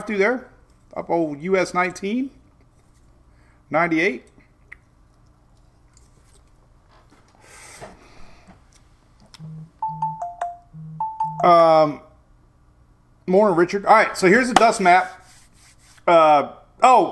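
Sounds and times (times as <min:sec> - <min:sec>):
speech: 0:00.0 - 0:02.4, 0:03.7 - 0:04.3, 0:11.4 - 0:12.0, 0:13.3 - 0:15.2, 0:16.1 - 0:17.1
phone chiming with short electronic beeps: 0:09.4 - 0:11.7.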